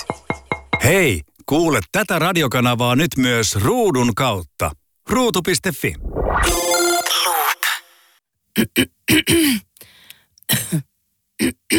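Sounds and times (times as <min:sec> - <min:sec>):
speech: 0:00.8 - 0:07.5, 0:08.6 - 0:09.7, 0:10.5 - 0:11.7
brief electronic ringing tone: 0:06.3 - 0:07.9
throat clearing: 0:08.6 - 0:09.7, 0:10.5 - 0:11.7
person coughing: 0:09.1 - 0:09.6, 0:10.5 - 0:11.7.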